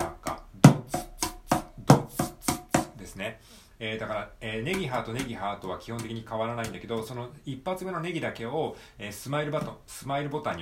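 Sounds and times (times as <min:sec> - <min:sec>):
mini cajon drum pattern with hand slaps and bass thumps: 0:00.0 - 0:03.2, 0:04.0 - 0:07.3, 0:09.4 - 0:10.6
speech: 0:03.2 - 0:10.6.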